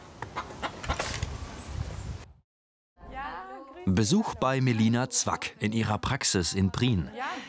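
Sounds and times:
chickens clucking: 0:00.2 - 0:01.3
speech: 0:03.9 - 0:07.4.

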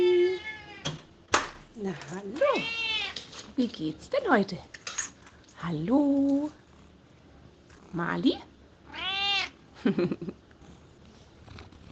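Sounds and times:
cat meowing: 0:00.2 - 0:00.9, 0:02.5 - 0:03.2, 0:08.8 - 0:09.6
speech: 0:01.8 - 0:02.8, 0:03.6 - 0:04.8, 0:05.6 - 0:06.6, 0:07.9 - 0:08.5, 0:09.8 - 0:10.4.

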